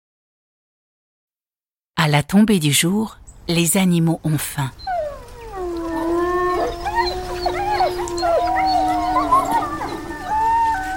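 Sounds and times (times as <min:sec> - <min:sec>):
speech: 0:02.0 - 0:04.9
chorus of wolves howling with yips and whines: 0:04.8 - 0:10.9.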